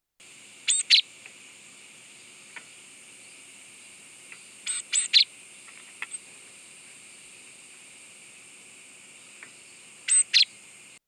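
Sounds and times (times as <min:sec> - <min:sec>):
Japanese tit Parus minor alarm call: 0:00.6 - 0:01.1, 0:04.6 - 0:05.4, 0:10.0 - 0:10.7.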